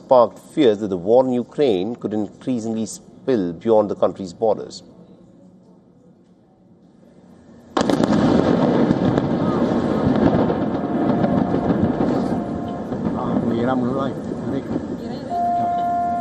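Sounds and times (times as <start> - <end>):
speech: 0.1 - 5.0
massive explosion echoing across a coastline: 7.8 - 16.1
thin tone: 15.3 - 16.1.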